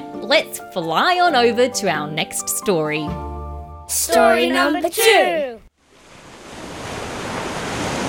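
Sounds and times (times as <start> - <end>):
speech: 0.3 - 3.3, 3.9 - 5.6
rushing surf of ocean waves: 5.8 - 8.0.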